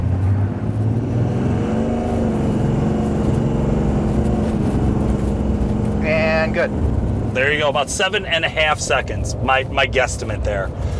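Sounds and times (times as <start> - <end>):
turbocharged car engine accelerating hard from a standstill: 0.0 - 10.9
speech: 6.6 - 10.9.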